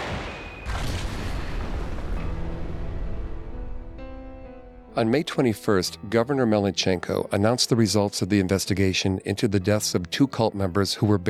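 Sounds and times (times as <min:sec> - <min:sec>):
debris roaring: 0:00.0 - 0:04.4
controlled explosions demolishing a cave: 0:00.0 - 0:04.8
speech: 0:05.0 - 0:11.2.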